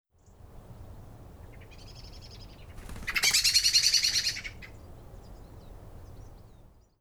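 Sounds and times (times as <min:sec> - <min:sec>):
Eurasian blackbird Turdus merula chattering rattle: 0:02.8 - 0:04.7.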